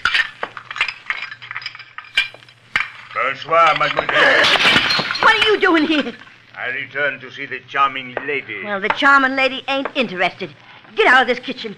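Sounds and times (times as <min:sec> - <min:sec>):
dirty dishes clinking as a stack of plates and cups is carried: 0:00.0 - 0:06.3
speech: 0:03.2 - 0:11.7.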